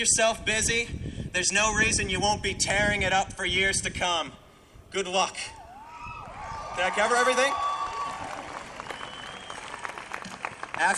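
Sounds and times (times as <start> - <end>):
speech: 0.0 - 5.6, 6.8 - 7.7, 10.8 - 10.9
audience polite applause at the close of a farewell address: 6.2 - 10.9.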